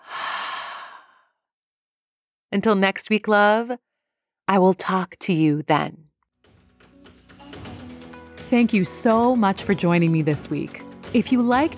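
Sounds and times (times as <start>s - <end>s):
deep breath in and out in a guided breathing exercise: 0.0s - 1.4s
speech: 2.5s - 3.9s, 4.5s - 6.0s, 8.5s - 11.7s.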